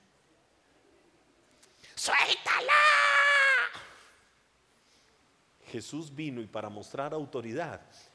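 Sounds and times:
speech: 0:02.0 - 0:03.1, 0:05.7 - 0:08.1
person screaming in imitation of a demon: 0:02.0 - 0:04.1.

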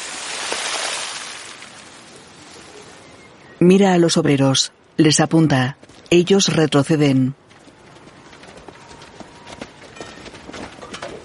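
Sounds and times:
steady noise: 0:00.0 - 0:11.2
speech: 0:03.6 - 0:07.4
running footsteps of a man running away: 0:05.8 - 0:06.1, 0:07.4 - 0:11.2.

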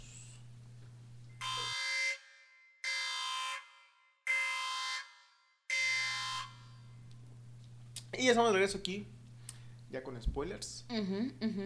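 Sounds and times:
low steady hum: 0:00.0 - 0:01.7, 0:06.1 - 0:11.6
loud harsh alarm buzzer blasts: 0:01.4 - 0:07.0
speech: 0:08.1 - 0:09.2, 0:09.9 - 0:11.6.

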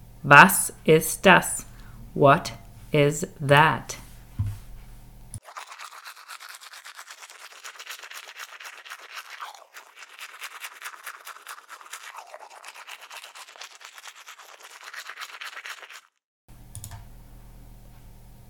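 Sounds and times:
speech: 0:00.2 - 0:04.0
toothbrush brushing teeth: 0:05.4 - 0:16.2.

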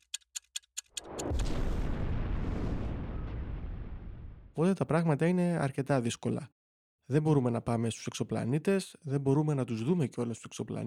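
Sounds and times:
sharp clicks: 0:00.0 - 0:01.5
massive deep explosion: 0:01.1 - 0:04.6
speech: 0:04.6 - 0:10.8.

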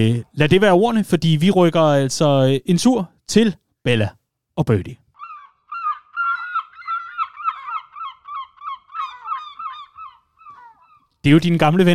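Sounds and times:
speech: 0:00.0 - 0:05.0, 0:11.2 - 0:11.9
large gulls squawking: 0:05.2 - 0:11.9.

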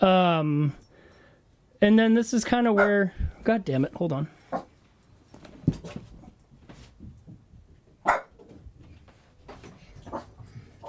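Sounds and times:
speech: 0:00.0 - 0:00.8, 0:01.8 - 0:04.6
dog barking outside a house: 0:02.8 - 0:03.0, 0:08.0 - 0:08.3.

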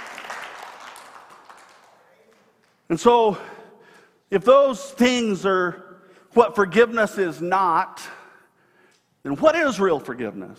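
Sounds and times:
audience applauding: 0:00.0 - 0:02.9
speech: 0:02.9 - 0:03.6, 0:04.3 - 0:08.1, 0:09.2 - 0:10.5.

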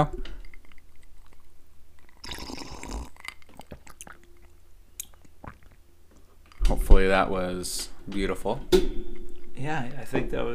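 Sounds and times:
speech: 0:00.0 - 0:00.2, 0:06.9 - 0:10.5
swallow: 0:00.3 - 0:04.3, 0:05.0 - 0:05.8
wet mouth clicks: 0:00.3 - 0:05.8
sipping water: 0:00.3 - 0:06.6.

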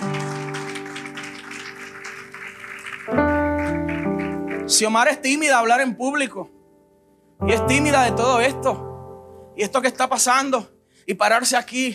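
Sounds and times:
audience clapping at a church service: 0:00.0 - 0:05.5
sustained keyboard chords: 0:00.0 - 0:11.6
speech: 0:04.7 - 0:06.6, 0:07.4 - 0:08.9, 0:09.6 - 0:11.9.

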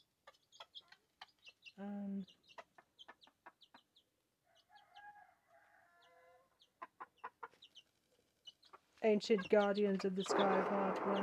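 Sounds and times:
brood of chicks peeping: 0:00.0 - 0:05.1, 0:06.0 - 0:11.2
hen clucking: 0:00.0 - 0:05.1, 0:06.0 - 0:11.2
speech: 0:01.8 - 0:02.4, 0:09.0 - 0:11.2.

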